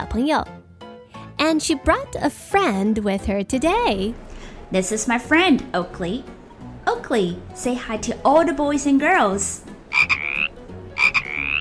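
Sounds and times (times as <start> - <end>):
speech: 0.1 - 0.6, 1.4 - 9.7
frog croaking as a greeting: 9.9 - 11.6.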